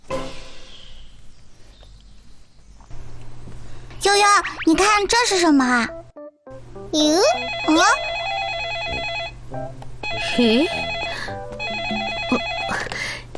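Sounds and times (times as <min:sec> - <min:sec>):
continuous hum: 0:00.0 - 0:13.3
speech: 0:04.0 - 0:06.0, 0:06.9 - 0:08.1, 0:10.3 - 0:10.9
telephone ringing with a bright electronic warbling tone: 0:07.3 - 0:09.4, 0:10.0 - 0:12.9.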